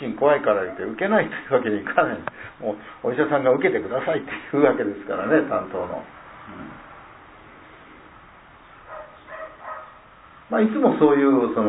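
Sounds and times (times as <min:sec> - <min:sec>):
speech: 0:00.0 - 0:06.8, 0:10.5 - 0:11.6
steady hiss: 0:00.0 - 0:11.6
faint dog barking: 0:00.4 - 0:01.0, 0:08.8 - 0:10.1.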